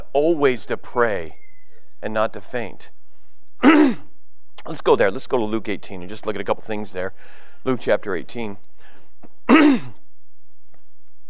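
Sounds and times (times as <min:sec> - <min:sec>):
speech: 0:00.2 - 0:01.4, 0:02.0 - 0:03.0, 0:03.6 - 0:04.0, 0:04.6 - 0:08.7, 0:09.5 - 0:10.0
faint breath: 0:03.0 - 0:03.5, 0:07.2 - 0:07.6, 0:08.8 - 0:09.2
throat clearing by a speaker with inflamed vocal cords: 0:03.6 - 0:04.1, 0:09.5 - 0:10.0.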